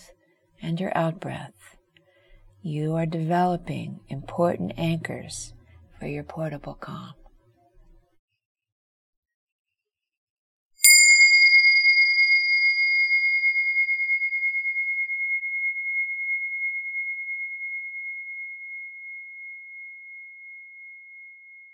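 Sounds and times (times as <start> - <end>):
speech: 0.6 - 1.8, 2.6 - 7.2
meditation bell ringing: 10.8 - 21.7.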